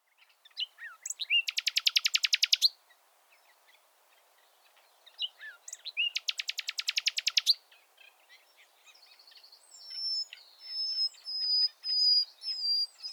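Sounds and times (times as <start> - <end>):
common nightingale Luscinia megarhynchos singing with rattling trills: 0.4 - 2.8, 5.1 - 7.7, 8.9 - 13.1.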